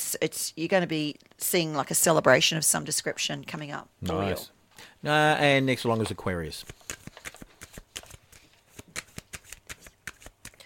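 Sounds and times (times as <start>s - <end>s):
speech: 0.1s - 7.0s
tarot cards being shuffled: 6.0s - 10.6s.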